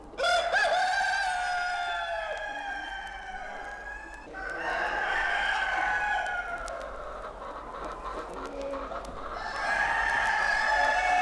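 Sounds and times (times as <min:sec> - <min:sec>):
rooster crowing in a farmyard: 0:00.2 - 0:06.7, 0:09.4 - 0:11.2
fowl sounds in a farmyard: 0:00.6 - 0:11.2.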